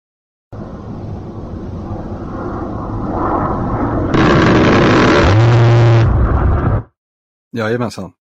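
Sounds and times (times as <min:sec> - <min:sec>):
jet-like rumble: 0:00.6 - 0:06.9
A-10 aircraft rotary cannon firing burst: 0:03.1 - 0:06.8
speech: 0:07.6 - 0:08.2.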